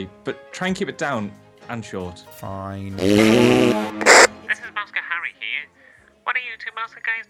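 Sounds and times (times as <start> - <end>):
speech: 0.0 - 4.1
loud raspy fart echoing through a huge megaphone: 3.0 - 4.6.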